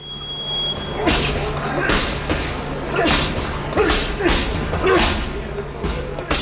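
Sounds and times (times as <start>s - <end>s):
faint voices murmuring: 0.0s - 6.4s
fists thudding against punching bags: 0.8s - 6.4s.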